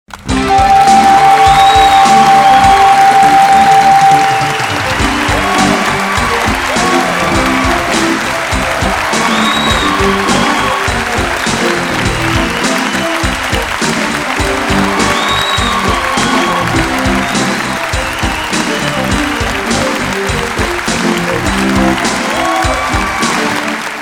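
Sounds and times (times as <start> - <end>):
audience cheering for a big win: 0.1 - 24.0.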